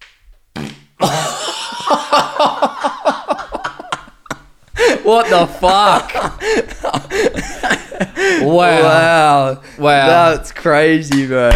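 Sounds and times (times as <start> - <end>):
long loud sputtering fart: 0.5 - 1.0
laughter: 1.0 - 10.4
speech: 5.1 - 7.3, 8.2 - 11.5.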